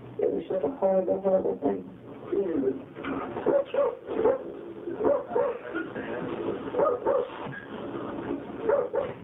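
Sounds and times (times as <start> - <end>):
speech: 0.3 - 9.2
retired racing greyhounds barking and whimpering: 3.5 - 5.7, 6.8 - 7.4, 8.6 - 9.2.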